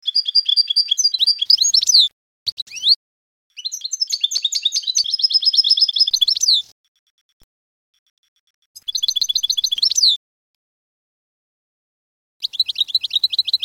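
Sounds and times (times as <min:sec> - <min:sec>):
canary singing trills: 0:00.0 - 0:06.7, 0:08.8 - 0:10.2, 0:12.4 - 0:13.6.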